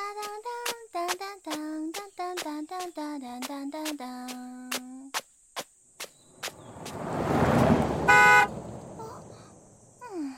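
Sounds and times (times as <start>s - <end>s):
crickets chirping: 0.0s - 10.3s
recklessly driven car driving past: 6.2s - 10.0s
short bright car horn toot: 7.8s - 9.0s.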